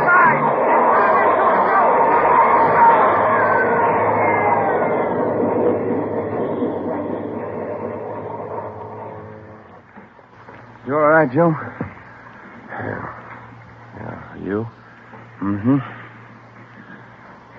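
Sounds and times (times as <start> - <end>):
underground train rushing through a subway tunnel: 0.0 - 12.4
speech: 11.2 - 11.8, 15.6 - 16.0.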